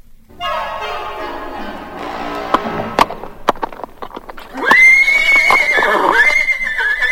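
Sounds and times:
hooves clopping on a hard surface: 0:00.3 - 0:07.1
wild stallion neighing: 0:02.3 - 0:07.1.

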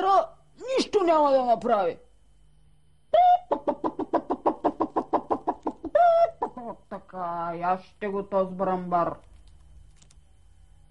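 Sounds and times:
speech: 0:01.0 - 0:02.1, 0:06.6 - 0:09.3
hens clucking: 0:03.4 - 0:06.6.

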